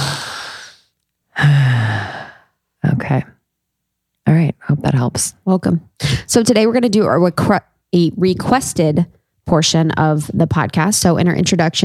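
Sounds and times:
deep belly breaths: 0.0 - 2.6
speech: 3.1 - 3.3, 4.9 - 11.8.

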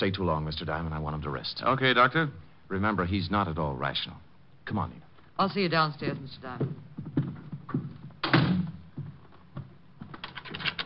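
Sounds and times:
speech: 0.0 - 7.2
footsteps: 6.0 - 10.8
heavy door swinging shut with a solid thud: 8.2 - 8.8.

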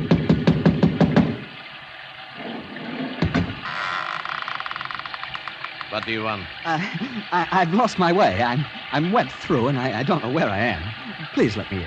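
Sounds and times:
rapping on a door with a bronze idol: 0.0 - 1.4, 3.2 - 3.6
steady hiss: 1.8 - 11.8
speech: 6.0 - 11.8
laughter: 6.6 - 9.8, 10.4 - 11.8.

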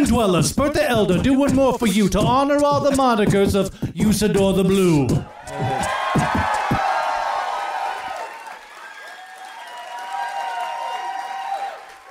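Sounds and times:
speech: 0.0 - 6.4
live audience cheering with whoops and shouts: 5.3 - 12.0
live audience clapping: 5.3 - 12.0.

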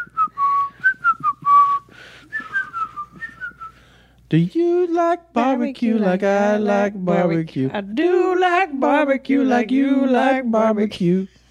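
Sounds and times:
person whistling the whistle part of a song: 0.0 - 3.8
speech: 4.3 - 11.4.

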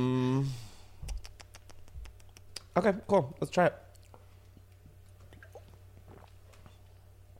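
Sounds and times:
low steady hum: 0.0 - 7.3
speech: 2.8 - 3.9
gulping water from a glass bottle: 5.2 - 6.4.

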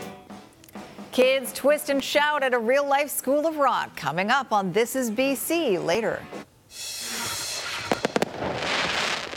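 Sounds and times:
speech: 1.1 - 6.4
fireworks exploding: 7.1 - 9.3.

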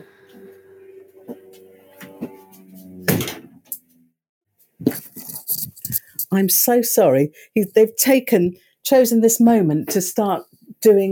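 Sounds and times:
Spitfire aeroplane engine droning above the shed: 0.0 - 3.1
shed door swinging shut with a solid bang: 3.0 - 3.6
shuffling and rattling: 4.8 - 6.3
speech: 6.3 - 11.1.

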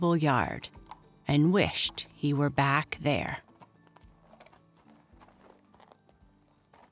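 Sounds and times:
speech: 0.0 - 3.5
hooves of horses drawing a van clip-clopping on a hard road: 3.3 - 6.9.

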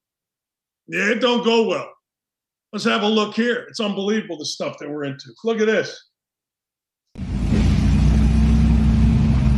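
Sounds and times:
speech: 0.9 - 2.0, 2.7 - 6.1
motorcycle engine revving while racing: 7.2 - 9.5.

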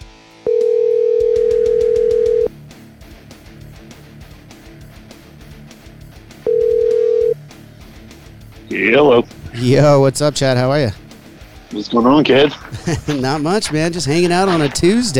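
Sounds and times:
busy music: 0.0 - 15.1
phone line ringback tone: 0.5 - 2.5, 6.5 - 7.4
speech: 8.8 - 11.0, 11.7 - 15.1
laughter: 11.9 - 15.1.

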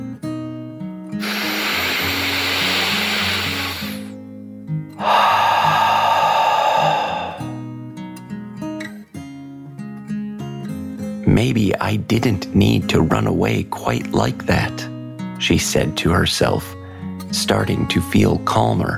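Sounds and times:
deep dragon breath in and out in a told story: 1.2 - 4.1, 5.0 - 7.6, 16.8 - 17.1
speech: 11.4 - 14.8, 15.4 - 18.9.

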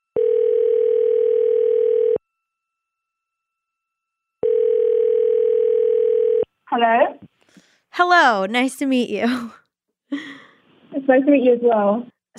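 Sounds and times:
telephone ringing tone while calling someone back: 0.1 - 2.2, 4.4 - 6.5
speech: 8.0 - 10.2, 11.0 - 12.3.

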